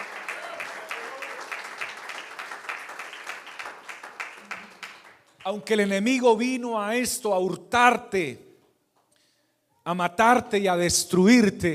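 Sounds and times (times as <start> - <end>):
audience applauding: 0.0 - 5.5
speech: 5.5 - 8.5, 9.8 - 11.7.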